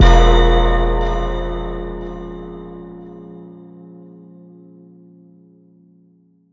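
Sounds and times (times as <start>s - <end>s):
power bell: 0.0s - 4.5s.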